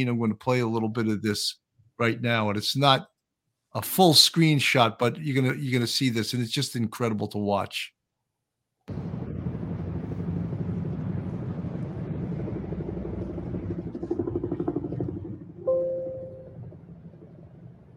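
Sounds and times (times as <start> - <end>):
speech: 0.0 - 3.1, 3.7 - 8.0, 8.9 - 9.2
police helicopter flying overhead with rapid rotor chopping: 8.9 - 15.7
brief tonal whine rising: 8.9 - 17.9.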